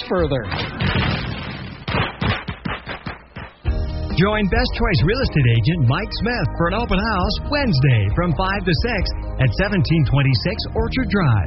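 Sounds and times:
speech: 0.1s - 1.0s, 4.2s - 11.4s
fireworks crackling and popping: 0.5s - 3.7s.

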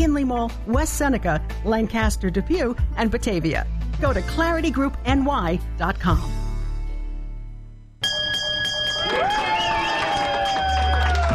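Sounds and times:
speech: 0.2s - 6.4s
victory bell struck: 8.0s - 9.6s
crowd cheering and shouting: 9.0s - 11.3s.

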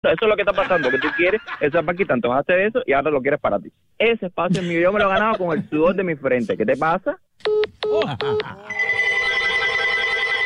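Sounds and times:
speech: 0.0s - 9.0s
laughter: 0.2s - 2.1s, 8.0s - 8.8s
telephone ringing: 8.7s - 10.4s.

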